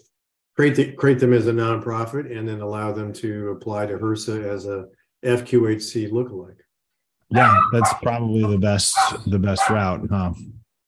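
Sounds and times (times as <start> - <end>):
speech: 0.6 - 6.6, 7.3 - 10.6
dog barking: 7.3 - 9.9.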